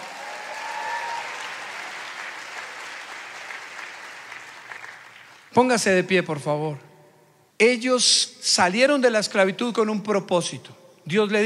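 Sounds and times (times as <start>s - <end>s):
audience applauding: 0.0s - 5.5s
speech: 5.6s - 6.9s, 7.6s - 11.4s.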